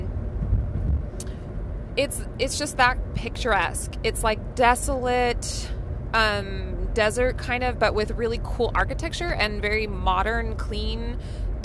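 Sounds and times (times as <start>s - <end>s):
car interior road noise crossing bridges: 0.0s - 11.6s
speech: 2.0s - 11.4s.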